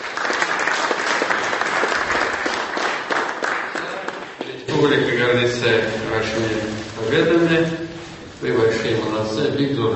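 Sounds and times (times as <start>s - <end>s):
large audience applauding a women's volleyball team from Tatarstan: 0.0s - 4.6s
speech: 4.8s - 7.8s, 8.4s - 9.9s.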